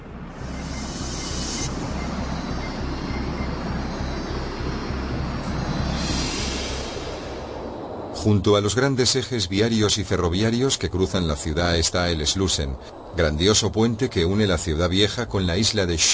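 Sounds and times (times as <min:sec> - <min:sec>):
metro train rumbling: 0:00.0 - 0:16.1
high hissing: 0:00.4 - 0:09.1
speech: 0:08.2 - 0:16.1.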